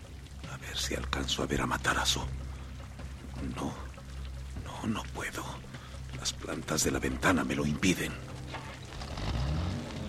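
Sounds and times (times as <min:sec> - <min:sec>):
speech: 0:00.6 - 0:02.4, 0:03.4 - 0:03.9, 0:04.8 - 0:08.3
car engine starting and revving on a rainy night: 0:08.2 - 0:10.0.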